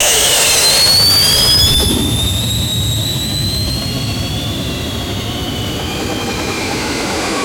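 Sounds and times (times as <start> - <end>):
futuristic mech thrusters blasting off: 0.0 - 7.3.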